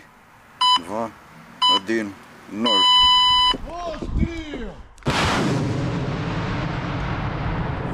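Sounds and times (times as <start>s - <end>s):
speech: 0.8s - 4.9s
artillery gun firing near the front line in Ukraine: 5.0s - 7.8s.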